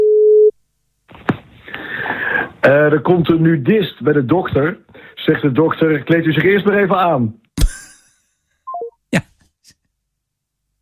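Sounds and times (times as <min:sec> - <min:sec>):
telephone tone on an outgoing call: 0:00.0 - 0:00.5, 0:08.7 - 0:08.9
speech: 0:02.6 - 0:07.4.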